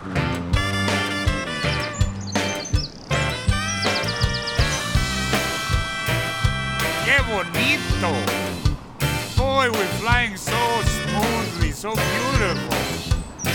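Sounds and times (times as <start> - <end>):
birds chirping: 0.0 - 13.5
music with a rhythmic low beat: 0.0 - 13.5.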